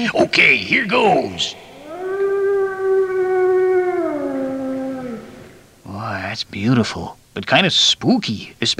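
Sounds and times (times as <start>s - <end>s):
speech: 0.0s - 1.6s, 6.3s - 8.7s
wolf howling: 1.6s - 5.8s.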